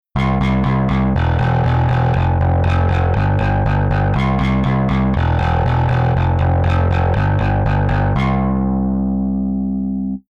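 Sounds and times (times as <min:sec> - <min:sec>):
bass through overdrive effector: 0:00.0 - 0:10.3.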